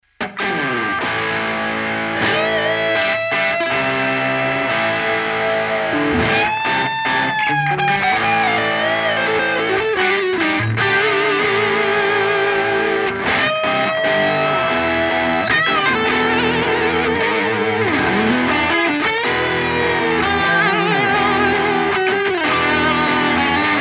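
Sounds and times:
electric guitar with bridge pickup playing rhythm and solo: 0:00.1 - 0:23.8.

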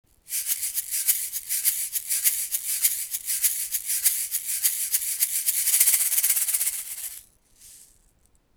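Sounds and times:
shaker: 0:00.1 - 0:08.5.

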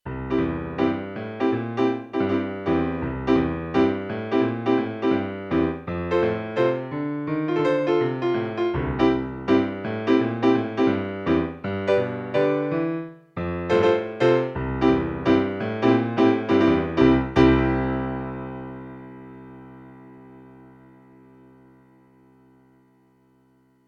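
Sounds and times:
Casio XW-G1 synthesizer piano: 0:00.0 - 0:23.8.

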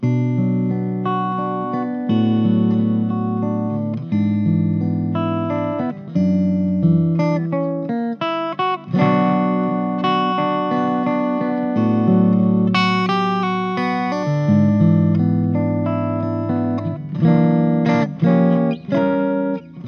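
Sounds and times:
studio ballad: 0:00.0 - 0:19.8.

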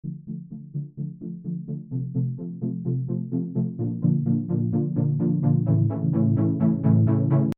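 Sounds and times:
128 BPM epic lift in D: 0:02.6 - 0:07.5.

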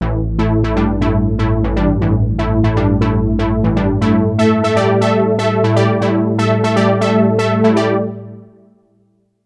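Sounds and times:
polyphonic synth lead: 0:00.0 - 0:08.7.

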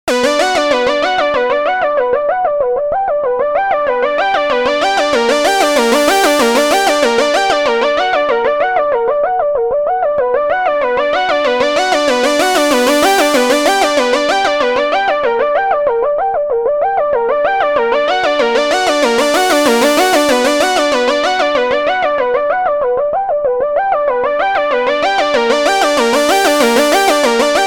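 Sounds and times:
software synthesizer growling arpeggio: 0:00.0 - 0:27.6.

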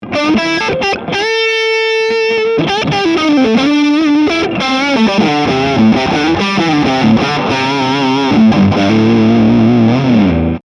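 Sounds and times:
electric guitar vintage lead tone through a tube amplifier on front pickup: 0:00.0 - 0:10.6.

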